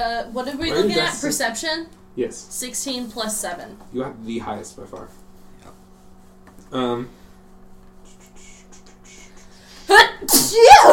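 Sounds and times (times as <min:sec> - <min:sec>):
speech: 0:00.0 - 0:05.8, 0:06.7 - 0:07.2, 0:09.9 - 0:10.9
loud sneeze: 0:09.9 - 0:10.9.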